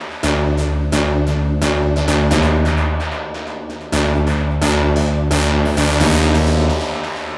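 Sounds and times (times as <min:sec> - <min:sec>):
techno synth loop in D: 0:00.0 - 0:07.3.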